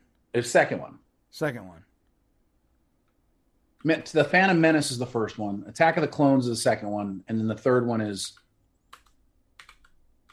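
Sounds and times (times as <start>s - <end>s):
speech: 0.4s - 1.9s, 3.8s - 8.4s
typing on a computer keyboard: 8.4s - 10.3s.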